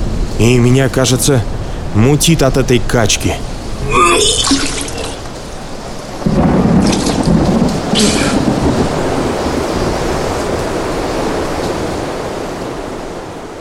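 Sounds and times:
speech: 0.4s - 4.8s, 8.0s - 8.4s
heavy rain in a thunderstorm at sea: 3.4s - 13.5s
deep rumbling roll of thunder at sea: 6.1s - 10.6s.

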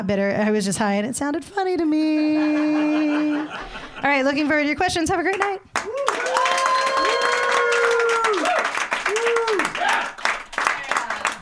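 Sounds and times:
speech: 0.0s - 6.4s
laughter: 2.1s - 4.5s
audience clapping after a comedy set: 5.2s - 11.4s
people whooping and calling out: 5.8s - 11.4s.

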